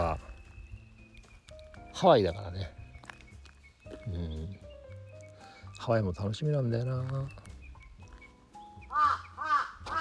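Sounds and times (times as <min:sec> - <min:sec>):
speech: 0:02.0 - 0:02.8, 0:05.8 - 0:07.4
crows cawing at Lake Toya in Japan: 0:08.9 - 0:10.0.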